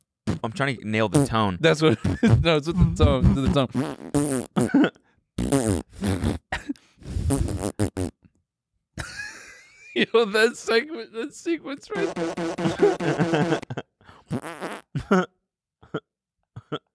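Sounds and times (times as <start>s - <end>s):
person imitating fart noises with buzzy sputtering mouth noises: 0.2s - 0.5s, 1.1s - 8.3s, 12.0s - 15.0s
speech: 0.4s - 4.9s, 10.0s - 15.3s
laughter: 1.8s - 3.6s, 9.0s - 10.9s, 11.8s - 13.9s.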